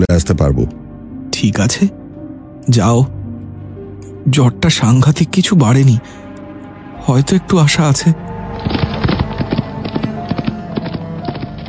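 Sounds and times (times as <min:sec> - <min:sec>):
speech: 0:00.2 - 0:00.8, 0:01.4 - 0:02.0, 0:02.6 - 0:03.2, 0:04.2 - 0:06.2, 0:07.0 - 0:09.6
horse hooves clip-clopping as a horse is ridden onto a road: 0:08.5 - 0:11.6.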